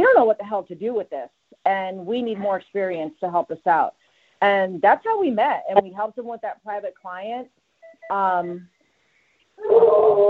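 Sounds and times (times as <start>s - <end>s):
speech: 0.2s - 8.7s, 9.6s - 10.2s
hound dog howling: 9.6s - 10.2s.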